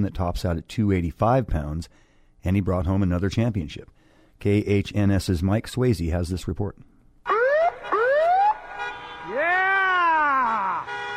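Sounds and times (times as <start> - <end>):
speech: 0.0 - 6.9
fire truck siren wailing during a celebration parade in a coastal Alaskan town: 7.3 - 11.1.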